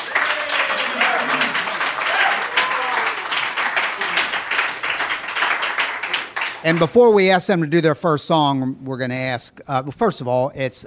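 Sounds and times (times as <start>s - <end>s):
faint voices and cheers: 0.0s - 4.3s
crowd applauding welcoming a band: 0.0s - 7.2s
speech: 6.6s - 10.8s.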